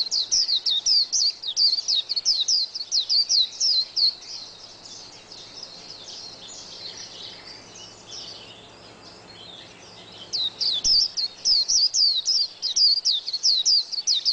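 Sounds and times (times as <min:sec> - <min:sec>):
background hiss: 0:00.0 - 0:14.3
white-eye twittering song: 0:00.0 - 0:14.3.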